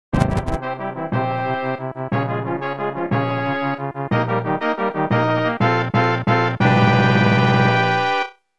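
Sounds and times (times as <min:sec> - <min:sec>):
castle music: 0:00.1 - 0:08.5.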